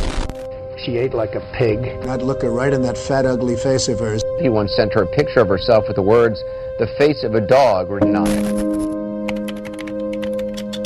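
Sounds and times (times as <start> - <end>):
steady tonal hum: 0.0 - 9.3
speech: 0.8 - 8.9
typing on a computer keyboard: 8.4 - 10.8.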